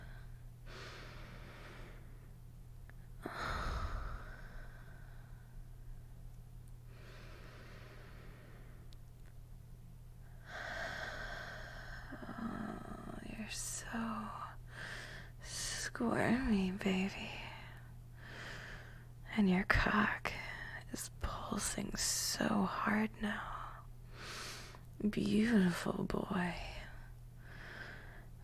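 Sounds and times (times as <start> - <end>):
slow deep breathing during a guided inhale-and-exhale exercise: 0.0 - 2.4, 3.2 - 6.1, 6.9 - 9.0, 10.2 - 12.9, 27.4 - 28.4
low steady hum: 0.0 - 28.4
speech: 13.5 - 14.4, 16.0 - 17.4, 19.4 - 20.3, 20.9 - 23.6, 25.0 - 26.7.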